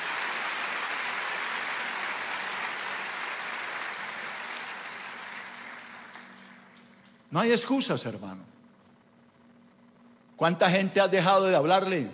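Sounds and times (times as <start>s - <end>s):
church audience applause during a sermon: 0.0s - 6.9s
speech: 7.3s - 8.6s, 10.4s - 12.1s.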